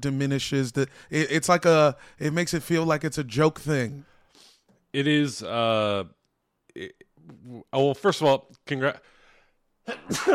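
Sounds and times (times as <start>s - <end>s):
speech: 0.0s - 4.1s, 4.9s - 6.2s, 6.8s - 9.1s, 9.8s - 10.3s
person sneezing: 9.9s - 10.3s.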